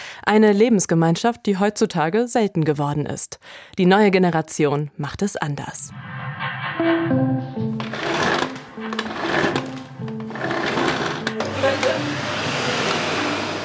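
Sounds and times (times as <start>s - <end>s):
speech: 0.2s - 7.5s
vacuum cleaner running: 7.8s - 13.6s.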